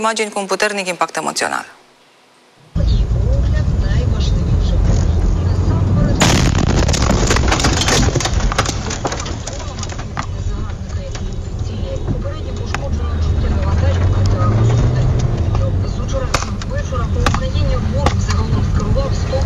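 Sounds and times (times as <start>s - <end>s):
speech: 0.0s - 1.8s
steady loud rumbling: 2.7s - 19.4s
crackling and splintering debris rattling as the car is damaged: 5.8s - 19.4s
kamikaze drone explosion beside a car in Zaporizhzhia: 6.1s - 10.1s.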